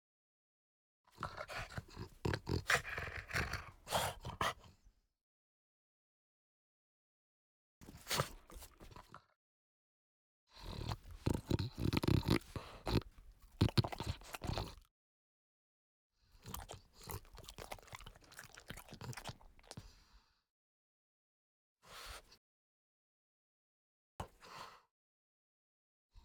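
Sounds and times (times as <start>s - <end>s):
French Bulldog giving rough snorting grunts: 1.2s - 4.7s, 10.6s - 14.9s, 16.4s - 19.4s.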